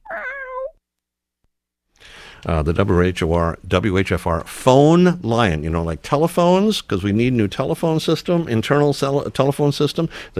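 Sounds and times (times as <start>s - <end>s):
cat meowing: 0.0s - 0.8s
speech: 2.4s - 10.3s.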